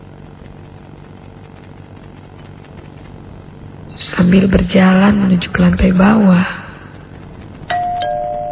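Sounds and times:
faint low hum: 0.0s - 8.5s
speech: 4.0s - 6.6s
electronic house doorbell chiming two bright tones: 7.7s - 8.5s.

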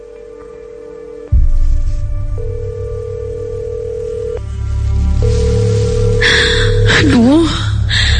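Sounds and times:
mobile phone call ringing tone: 0.0s - 1.3s, 2.4s - 4.4s, 5.2s - 7.4s
low rumble: 1.3s - 8.1s.

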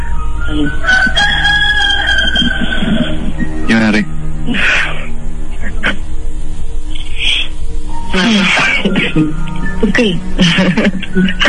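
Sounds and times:
steady low hum: 0.0s - 11.4s
speech: 0.5s - 1.2s, 3.7s - 4.8s, 9.2s - 11.4s
rooster crowing: 0.7s - 3.5s
laughter: 8.3s - 9.3s, 10.4s - 11.4s.

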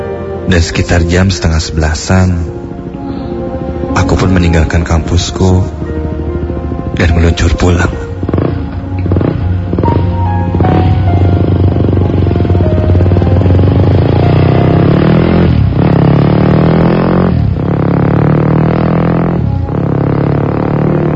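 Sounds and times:
speech: 0.5s - 2.6s, 4.0s - 5.8s, 7.0s - 8.0s
motorcycle engine idling and revving while warming up: 1.2s - 21.1s.

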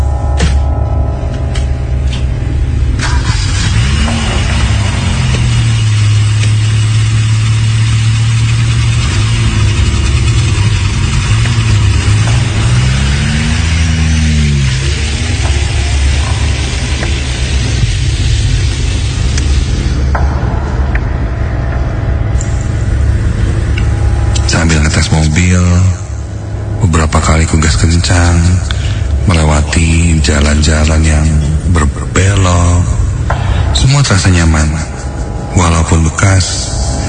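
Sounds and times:
road noise: 0.0s - 37.0s
used 1990s car engine idling and revving, driving off after refuelling: 0.0s - 37.0s.

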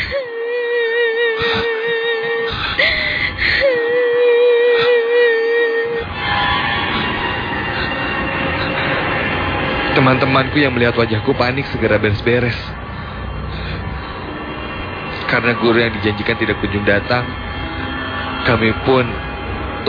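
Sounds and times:
woman wailing and crying in a lab: 0.0s - 6.1s
dense eerie noise: 0.0s - 19.8s
speech: 10.0s - 12.8s, 15.3s - 17.5s, 18.4s - 19.8s.

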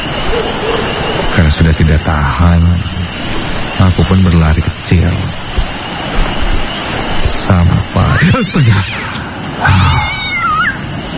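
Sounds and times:
constant noisy hiss: 0.0s - 11.1s
speech: 1.4s - 3.0s, 3.8s - 5.4s, 7.5s - 9.0s
cat meowing: 8.1s - 10.9s.

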